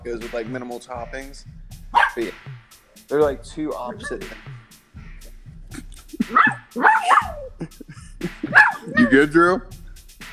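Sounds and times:
speech: 0:00.0 - 0:04.6, 0:06.3 - 0:09.8
dog barking and yipping with a whiny edge: 0:01.9 - 0:02.3, 0:06.1 - 0:07.5, 0:08.4 - 0:09.3
laughter: 0:03.7 - 0:04.5, 0:05.7 - 0:09.6.

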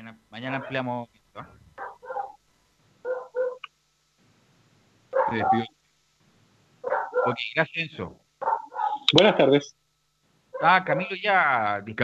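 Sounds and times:
speech: 0:00.1 - 0:01.6, 0:05.3 - 0:05.7, 0:07.3 - 0:08.2, 0:09.1 - 0:09.8, 0:10.6 - 0:12.0
small dog yapping: 0:01.8 - 0:02.4, 0:03.0 - 0:03.6, 0:05.2 - 0:05.7, 0:06.8 - 0:07.4, 0:08.4 - 0:09.1.

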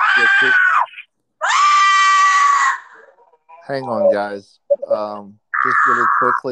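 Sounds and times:
person imitating a giant salamander's screech: 0:00.0 - 0:04.2, 0:05.6 - 0:06.5
speech: 0:00.2 - 0:00.6, 0:03.7 - 0:06.5.

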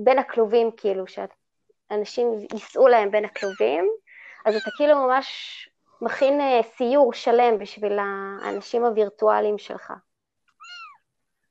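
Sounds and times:
speech: 0:00.0 - 0:10.1
cat chirp: 0:03.3 - 0:03.6, 0:04.5 - 0:04.8, 0:10.6 - 0:11.0
female cat meowing: 0:03.3 - 0:03.7, 0:04.5 - 0:04.8, 0:08.4 - 0:08.7, 0:10.6 - 0:11.0.

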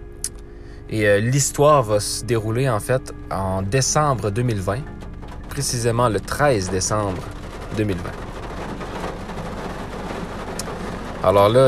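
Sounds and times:
speech: 0:00.9 - 0:05.0, 0:05.6 - 0:08.2, 0:11.2 - 0:11.6
heavy rain falling outside: 0:04.9 - 0:11.6.

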